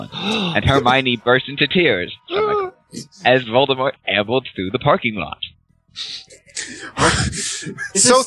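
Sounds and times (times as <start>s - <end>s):
person gasping dramatically: 0.0s - 0.6s, 6.0s - 7.9s
speech: 0.0s - 8.2s.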